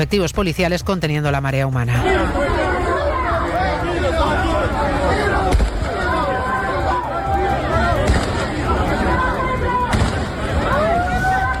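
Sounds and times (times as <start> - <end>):
speech: 0.0 - 2.7
dense crowd roaring and shouting: 2.0 - 11.5
shots fired into the air: 8.0 - 8.5, 9.9 - 10.4.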